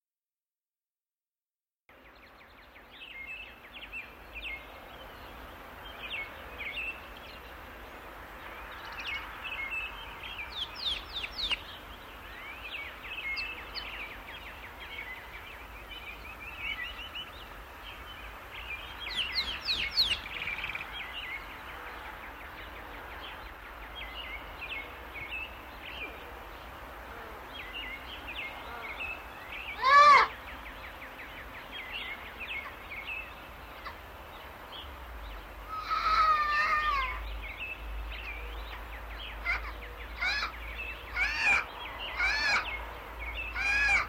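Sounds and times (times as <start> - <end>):
tropical rain forest sounds: 1.9 - 44.0.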